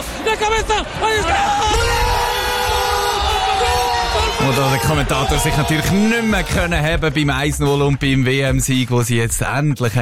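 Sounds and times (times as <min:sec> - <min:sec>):
large crowd roaring and cheering a World Cup win: 0:00.0 - 0:09.0
speech: 0:00.3 - 0:01.8, 0:04.5 - 0:10.0
loud individual whoops and yells: 0:01.0 - 0:06.7.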